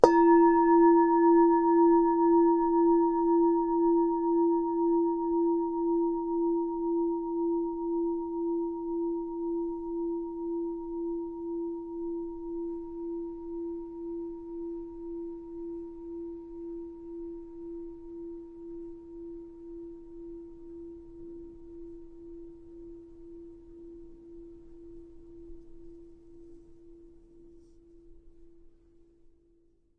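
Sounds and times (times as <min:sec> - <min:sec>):
Tibetan singing bowl strike: 0:00.0 - 0:10.8.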